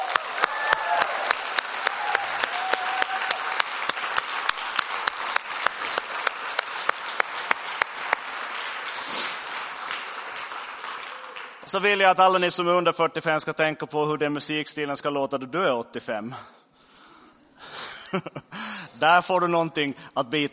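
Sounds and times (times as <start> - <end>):
large audience applauding: 0.0 - 11.7
speech: 11.7 - 16.6, 18.1 - 20.5.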